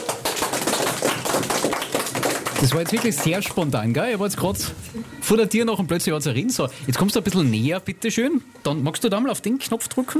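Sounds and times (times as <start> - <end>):
small group applauding in a studio: 0.0 - 4.0
speech: 2.6 - 10.1.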